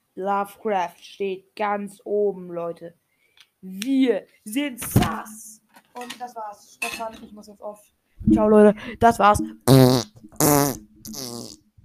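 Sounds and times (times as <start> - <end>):
speech: 0.2 - 3.0, 3.6 - 11.6
loud buzzy farts: 9.6 - 11.8.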